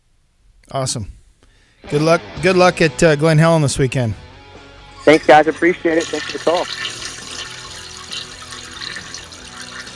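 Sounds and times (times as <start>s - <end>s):
speech: 0.7s - 1.2s, 1.9s - 4.2s, 5.0s - 7.0s
toilet flushing: 5.0s - 9.9s.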